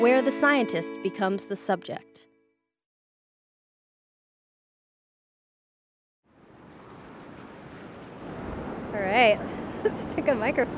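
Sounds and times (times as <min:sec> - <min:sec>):
speech: 0:00.0 - 0:02.3, 0:09.0 - 0:10.7
ocean surf roaring at a coastal pier: 0:06.3 - 0:10.7.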